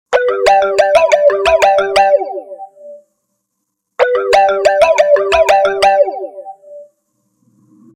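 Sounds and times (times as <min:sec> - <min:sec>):
space marimba: 0:00.2 - 0:02.7, 0:04.0 - 0:06.7.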